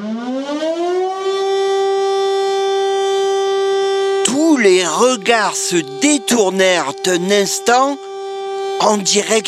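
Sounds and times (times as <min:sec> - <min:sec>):
lifeboat siren wailing: 0:00.0 - 0:09.4
speech: 0:05.0 - 0:08.1, 0:08.8 - 0:09.4.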